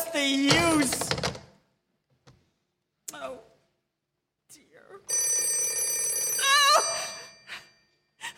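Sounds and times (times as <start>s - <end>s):
speech: 0.1s - 1.2s
telephone bell ringing with a metallic peal: 5.1s - 8.0s.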